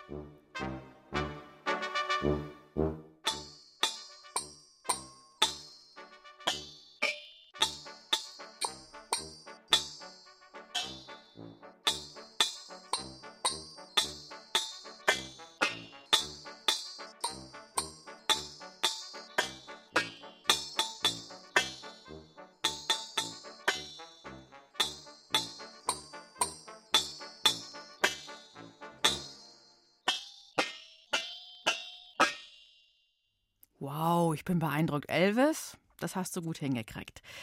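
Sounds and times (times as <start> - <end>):
speech: 2.2 - 2.9, 34.0 - 37.4
melody tapped out on cooking pots: 3.2 - 32.7.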